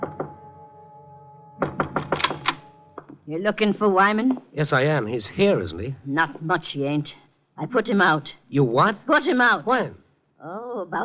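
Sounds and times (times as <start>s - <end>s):
knocking on a door: 0.0s - 0.4s, 1.6s - 2.4s
speech: 3.3s - 11.0s.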